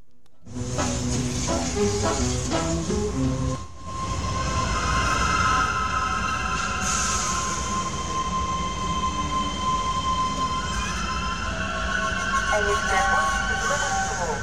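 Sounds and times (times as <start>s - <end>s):
commuter train pulling into a station platform: 0.4s - 14.4s
squealing commuter train wheels: 3.9s - 14.4s
public-address announcement over station speakers: 12.1s - 14.4s.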